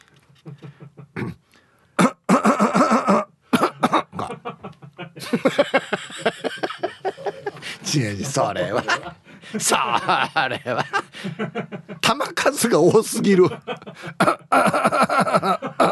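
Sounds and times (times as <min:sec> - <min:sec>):
speech: 0:00.4 - 0:00.9, 0:07.9 - 0:10.8, 0:11.4 - 0:13.7
laughter: 0:00.4 - 0:01.2, 0:04.1 - 0:15.9
man sick with a cold coughing in the rhythm of a TV theme tune: 0:02.0 - 0:04.5, 0:14.1 - 0:15.9.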